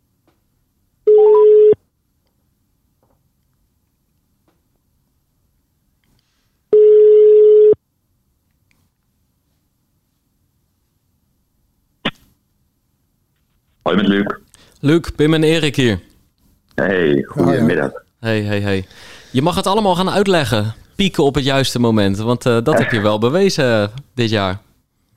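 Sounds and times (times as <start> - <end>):
telephone ringing on an outgoing call: 1.1 - 1.8, 6.8 - 7.8
speech: 13.9 - 16.1, 16.8 - 24.6.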